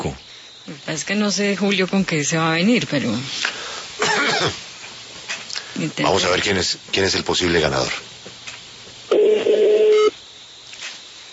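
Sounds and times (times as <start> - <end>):
speech: 0.0 - 3.6, 4.4 - 4.6, 5.8 - 8.1
telephone ringing tone of an electronic buzz: 9.1 - 10.1.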